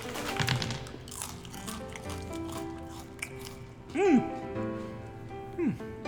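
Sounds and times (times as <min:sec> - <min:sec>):
crunching of maggot chips being chewed: 0:00.0 - 0:04.5.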